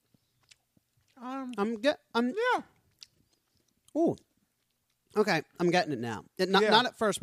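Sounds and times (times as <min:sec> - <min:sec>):
chewing a gummy candy: 0:00.0 - 0:05.3
speech: 0:01.2 - 0:02.7, 0:03.9 - 0:04.3, 0:05.1 - 0:07.2.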